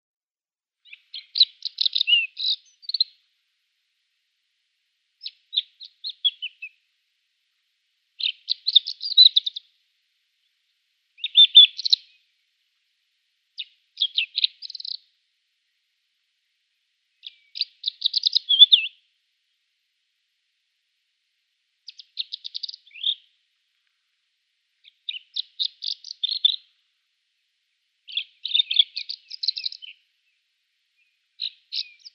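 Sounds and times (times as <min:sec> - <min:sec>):
Kordofan lark song: 0:00.8 - 0:03.3, 0:05.1 - 0:06.9, 0:08.2 - 0:12.5, 0:13.5 - 0:15.8, 0:16.4 - 0:19.1, 0:21.8 - 0:27.1, 0:27.7 - 0:32.1.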